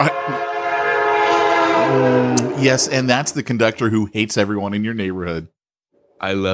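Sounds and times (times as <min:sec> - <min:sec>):
loud train horn blaring as train passes: 0:00.0 - 0:03.4
speech: 0:02.6 - 0:05.6, 0:06.2 - 0:06.5.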